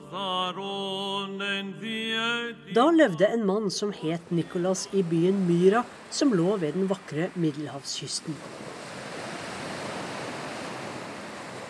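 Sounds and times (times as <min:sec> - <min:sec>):
speech: 0:00.1 - 0:08.8
ocean waves breaking on shore: 0:03.9 - 0:11.6.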